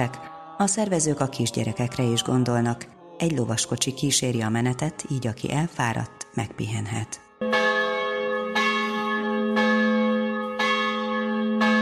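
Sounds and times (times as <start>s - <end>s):
speech: 0.0s - 7.3s
church bells ringing: 7.4s - 11.8s.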